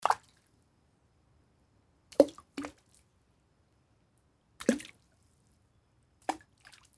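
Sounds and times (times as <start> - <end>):
stones thrown into water: 4.6 - 4.9.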